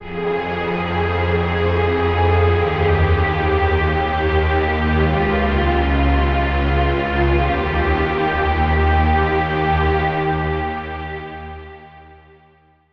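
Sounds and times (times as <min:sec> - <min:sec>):
warp drive synth pad: 0:00.0 - 0:11.8.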